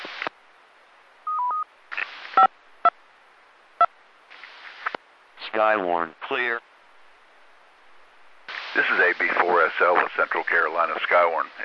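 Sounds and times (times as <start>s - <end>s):
electronic touch-tone control beeps over a radio repeater channel: 1.3s - 1.6s
bursts of hissy static: 1.9s - 2.5s, 4.3s - 6.6s, 8.5s - 11.6s
speech: 5.6s - 6.7s, 8.8s - 11.6s.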